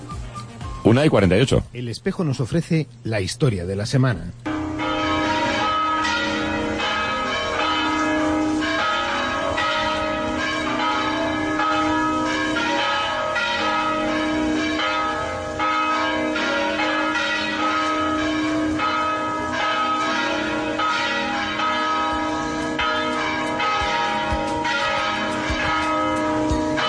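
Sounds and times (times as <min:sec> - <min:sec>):
speech: 0:00.9 - 0:04.5
several church bells pealing: 0:04.5 - 0:26.8.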